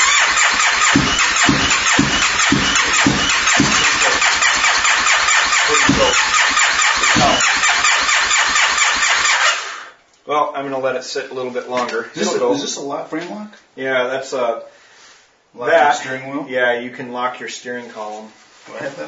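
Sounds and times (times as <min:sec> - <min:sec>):
engine starter cranking with a turn of the key: 0:00.0 - 0:09.9
speech: 0:10.5 - 0:14.7, 0:15.5 - 0:19.0.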